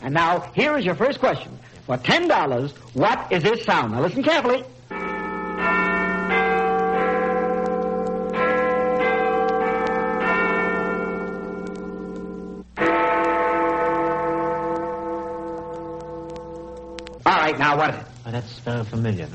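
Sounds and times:
speech: 0.0s - 4.8s, 17.6s - 19.3s
clock tower bell chiming at Westminster: 4.2s - 17.8s.

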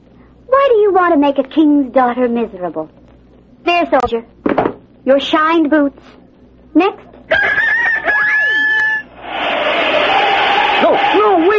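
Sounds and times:
speech: 0.9s - 3.0s, 3.8s - 4.4s, 5.0s - 6.2s, 6.8s - 7.1s
rooster crowing: 7.3s - 11.5s.

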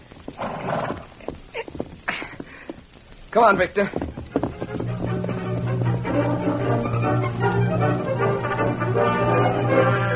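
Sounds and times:
horse hooves clip-clopping as rider leaves on horseback: 0.0s - 10.0s
speech: 3.4s - 4.1s.

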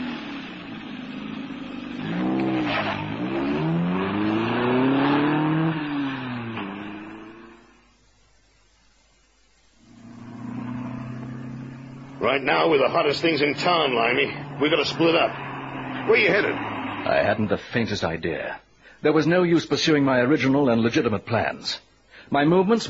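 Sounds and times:
car engine revving through gear changes: 0.0s - 8.0s, 9.8s - 17.6s
speech: 12.3s - 15.4s, 16.1s - 22.8s.

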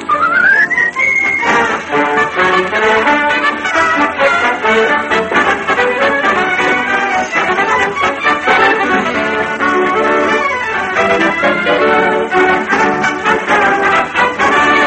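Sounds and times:
busy full instrumental music: 0.0s - 14.8s
person whistling a melody: 0.1s - 1.8s.

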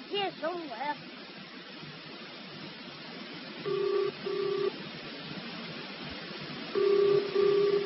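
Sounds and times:
faint hiss: 0.0s - 7.8s
speech: 0.3s - 1.3s
telephone ringing tone heard down the line: 3.6s - 4.7s, 6.7s - 7.8s.

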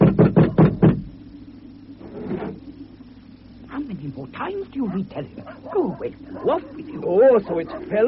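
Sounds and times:
loud heavy knocks on a door: 0.0s - 1.1s
speech: 4.3s - 8.0s.

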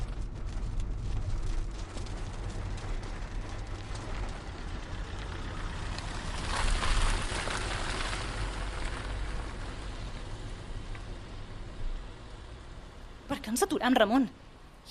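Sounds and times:
low rumble: 0.0s - 14.8s
steady rain from an easing storm: 0.0s - 14.8s
speech: 13.5s - 14.8s.

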